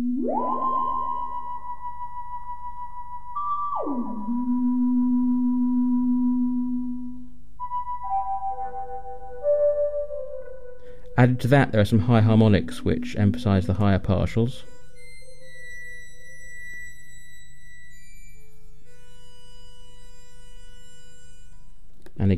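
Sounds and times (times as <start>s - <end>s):
wobulator melody of manually operated swoops with delay and echo: 0.0s - 21.8s
speech: 0.3s - 0.7s, 11.2s - 14.7s.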